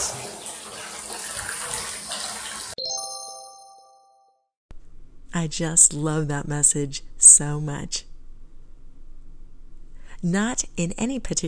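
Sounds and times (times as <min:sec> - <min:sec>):
water gushing into a bath: 0:00.0 - 0:02.8
bright chime: 0:02.8 - 0:04.2
speech: 0:05.4 - 0:08.1, 0:10.2 - 0:11.4.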